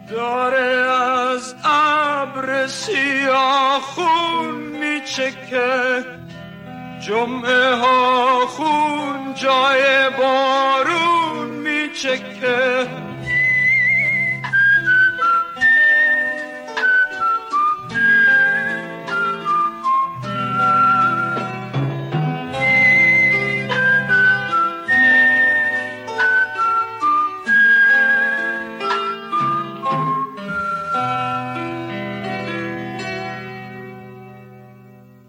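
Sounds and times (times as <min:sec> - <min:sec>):
steady low instrumental backing: 0:00.0 - 0:35.2
speech: 0:00.1 - 0:06.2, 0:07.0 - 0:13.1
calm whistling carrying the melody of an Iranian film song: 0:12.8 - 0:21.8, 0:22.5 - 0:31.6.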